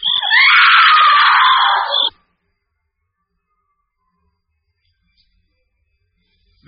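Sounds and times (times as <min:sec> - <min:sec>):
woman screaming: 0:00.1 - 0:02.1.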